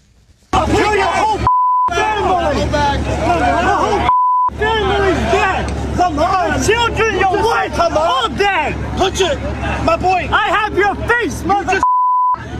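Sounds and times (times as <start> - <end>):
crowd shouting at a street protest: 0.5 - 11.8
short electronic beeps: 1.5 - 1.9, 4.1 - 4.5, 11.8 - 12.4
speech: 6.6 - 11.8.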